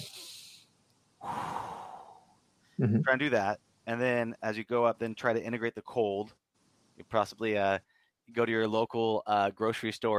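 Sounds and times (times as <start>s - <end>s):
person taking a deep belly breath in and out: 1.2s - 2.4s
speech: 2.8s - 6.4s, 7.0s - 10.1s.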